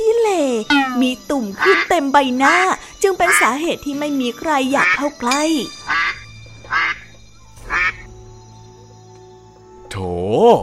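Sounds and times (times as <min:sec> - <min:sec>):
speech: 0:00.6 - 0:05.9, 0:09.9 - 0:10.6
duckling quacking while walking on a path beside a pond: 0:00.7 - 0:03.5, 0:04.8 - 0:05.1, 0:05.9 - 0:07.1, 0:07.7 - 0:08.1.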